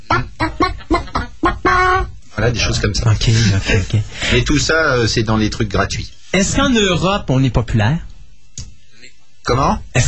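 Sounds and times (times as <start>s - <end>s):
tune performed entirely as chicken clucking: 0.0s - 2.2s
laughter: 0.1s - 2.0s, 3.2s - 4.4s
speech: 2.4s - 8.1s, 9.5s - 10.0s.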